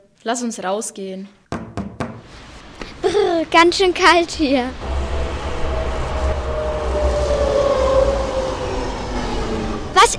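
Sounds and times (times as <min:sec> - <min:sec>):
speech: 0:00.2 - 0:01.4, 0:03.4 - 0:04.9
tram rumbling past: 0:02.2 - 0:10.1
tram wheels whining on rails: 0:02.4 - 0:10.1.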